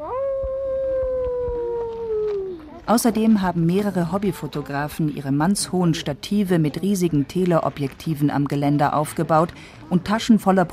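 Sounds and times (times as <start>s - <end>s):
children imitating wolf howls in a forest in drizzle: 0.0s - 2.7s
faint outdoor noise: 0.0s - 10.7s
speech: 2.9s - 10.7s.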